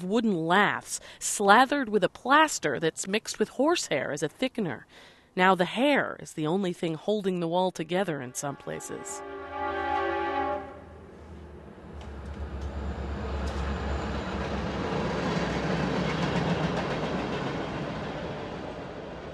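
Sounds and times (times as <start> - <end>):
speech: 0.0 - 9.3
commuter or freight train horn: 8.3 - 13.6
commuter or freight train rumbling past behind house: 8.4 - 19.3.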